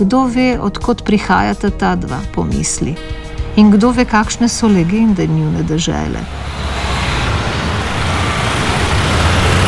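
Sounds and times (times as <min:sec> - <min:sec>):
speech: 0:00.0 - 0:06.9
automobile club tow truck driving away: 0:03.3 - 0:09.6.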